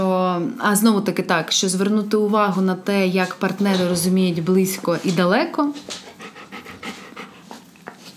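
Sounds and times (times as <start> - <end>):
speech: 0.5 - 6.0
dog panting: 5.8 - 8.1.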